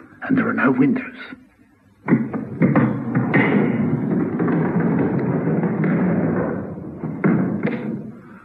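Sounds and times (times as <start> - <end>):
speech: 0.3 - 1.4
heavy prison factory wing door opening and closing: 2.1 - 8.4.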